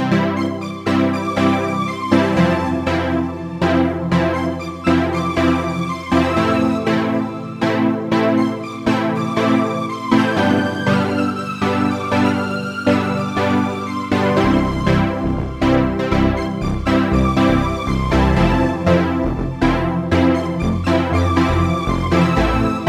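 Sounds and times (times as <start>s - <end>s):
major melody in C major: 0.1s - 22.8s.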